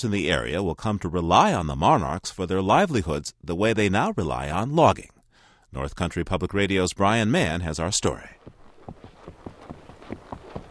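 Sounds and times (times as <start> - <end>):
speech: 0.0 - 8.5
horse hooves at walking pace on a forest trail through pine and oyamel fir: 8.2 - 10.6.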